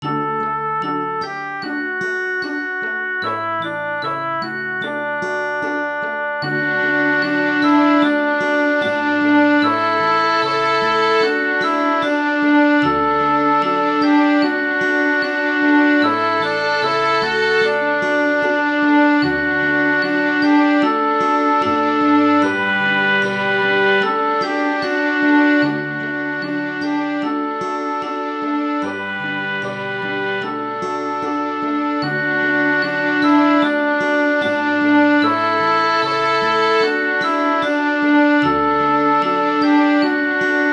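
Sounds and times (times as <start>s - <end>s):
lullaby on violin and viola: 0.0s - 40.7s.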